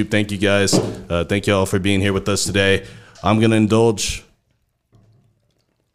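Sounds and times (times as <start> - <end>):
speech: 0.0 - 4.3
beer being opened and poured: 3.6 - 5.9.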